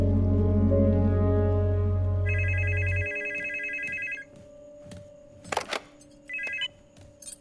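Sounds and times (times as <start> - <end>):
low steady drone: 0.0 - 2.3
telephone ringing in electronic trilling bursts: 2.3 - 4.3, 5.5 - 6.8.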